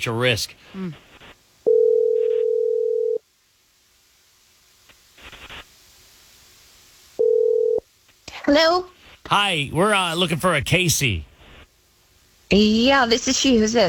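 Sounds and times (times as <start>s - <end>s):
speech: 0.0s - 1.1s, 8.5s - 11.3s, 12.5s - 13.8s
telephone dial tone while placing a call: 1.7s - 3.2s, 7.2s - 7.8s.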